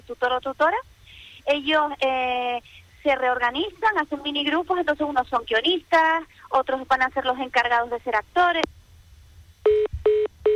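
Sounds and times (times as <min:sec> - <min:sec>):
speech: 0:00.1 - 0:08.8
electronic telephone beeps of a dropped phone line: 0:09.7 - 0:10.5.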